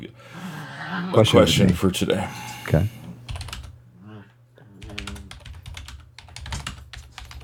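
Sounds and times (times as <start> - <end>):
speech: 1.1 - 3.0
fingers typing on a computer keyboard: 3.3 - 3.7, 4.8 - 7.4.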